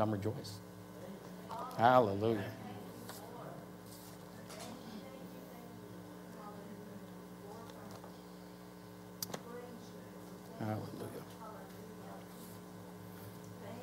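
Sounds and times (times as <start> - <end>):
speech: 0.0 - 0.7, 1.8 - 2.6, 10.6 - 11.2
electrical hum from a sound system: 0.0 - 13.8.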